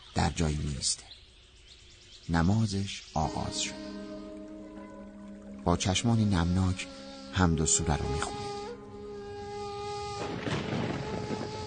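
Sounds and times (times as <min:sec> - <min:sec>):
speech: 0:00.2 - 0:01.2, 0:02.3 - 0:04.0, 0:05.6 - 0:08.5
thin buzzing hum: 0:03.0 - 0:11.6
rolling thunder rumbling: 0:10.1 - 0:11.6.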